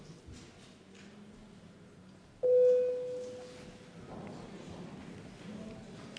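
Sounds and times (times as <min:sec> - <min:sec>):
parliament voting electronic bell tone: 0:02.4 - 0:03.6.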